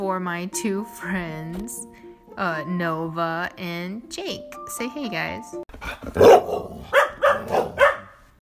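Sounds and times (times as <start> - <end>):
speech: 0.0 - 7.6
dogs barking: 5.8 - 8.3.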